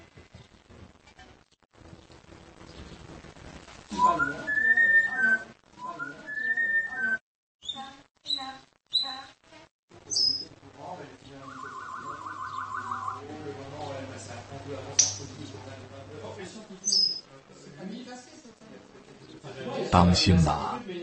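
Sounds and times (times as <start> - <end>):
chatter-like sounds: 3.9 - 20.8
speech: 4.0 - 4.6, 19.9 - 20.7
pet parrot whistling in bright warbling bursts: 4.0 - 7.2, 11.4 - 13.2.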